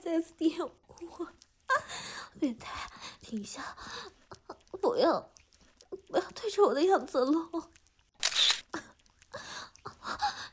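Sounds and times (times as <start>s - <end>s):
speech: 0.1s - 4.2s, 4.8s - 5.4s, 6.1s - 7.8s
camera shutter clicking: 8.2s - 8.7s.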